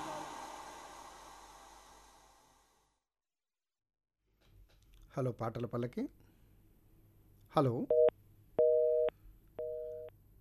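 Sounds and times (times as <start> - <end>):
speech: 5.2 - 6.2, 7.6 - 8.1
telephone busy signal after a phone call was cut off: 7.9 - 10.1.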